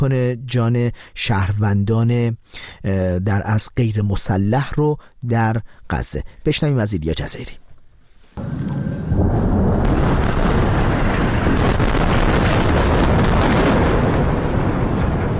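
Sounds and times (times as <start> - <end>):
speech: 0.0 - 7.6
loud bombing explosions booming: 8.4 - 15.3.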